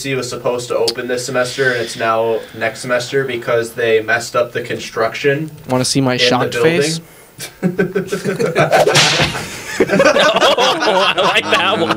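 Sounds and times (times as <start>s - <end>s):
speech: 0.0s - 11.9s
people chuckling: 7.4s - 11.9s
whip crack sound effect: 8.8s - 9.5s.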